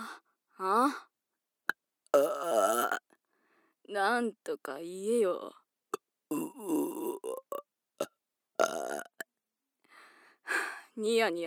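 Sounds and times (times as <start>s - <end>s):
speech: 0.6s - 1.1s, 3.9s - 5.6s, 11.0s - 11.4s
long loud rumbling burp: 2.2s - 3.0s, 6.3s - 7.6s, 8.6s - 9.2s.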